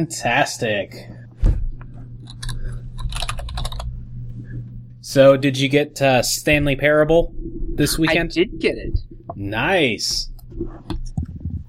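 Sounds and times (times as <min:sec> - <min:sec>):
speech: 0:00.0 - 0:01.2, 0:05.1 - 0:11.0
steady low hum: 0:00.0 - 0:11.6
typing on a computer keyboard: 0:02.3 - 0:03.9.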